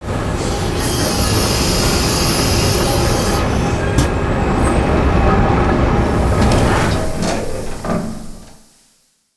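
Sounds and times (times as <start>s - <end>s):
chair lowering: 0.6s - 5.1s, 6.0s - 8.7s.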